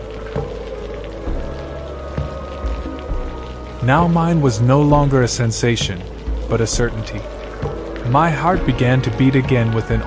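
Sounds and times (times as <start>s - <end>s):
heavy rain pouring: 0.0s - 10.0s
water splats and thuds striking a surface: 0.0s - 10.0s
speech: 3.8s - 7.4s, 8.1s - 10.0s.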